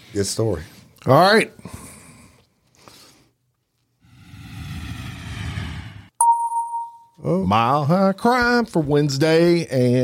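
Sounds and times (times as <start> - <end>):
speech: 0.1 - 1.8, 7.3 - 10.0
roar of jet engine and cabin noise: 4.1 - 6.2
loud clear two-tone cabin chime: 6.2 - 7.2.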